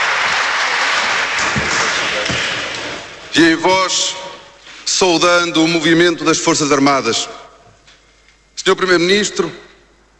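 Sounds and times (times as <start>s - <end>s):
standing crowd applauding in parliament galleries: 0.0s - 3.2s
speech: 3.4s - 4.2s, 4.9s - 7.4s, 8.6s - 9.7s.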